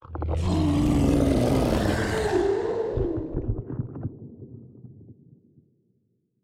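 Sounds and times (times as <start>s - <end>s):
space dragon attack: 0.1s - 3.4s.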